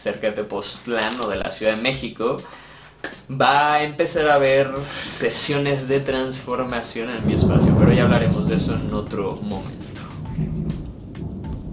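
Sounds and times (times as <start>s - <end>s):
speech: 0.0s - 9.8s
low rumble of thunder from an approaching storm: 7.2s - 11.7s
rain hiss: 7.2s - 11.7s.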